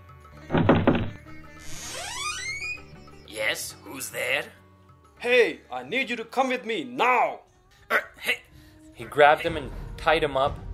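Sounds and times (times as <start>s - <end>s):
door creaking open with a rising squeal: 0.5s - 3.2s
speech: 3.5s - 4.6s, 5.2s - 8.4s, 9.0s - 10.7s.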